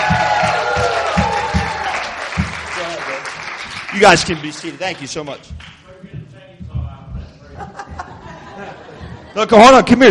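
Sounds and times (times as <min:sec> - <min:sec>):
crowd cheering with shouts: 0:00.0 - 0:02.9
crowd applauding: 0:00.0 - 0:06.0
speech: 0:04.0 - 0:05.7, 0:09.4 - 0:10.0
laughter: 0:07.2 - 0:09.9.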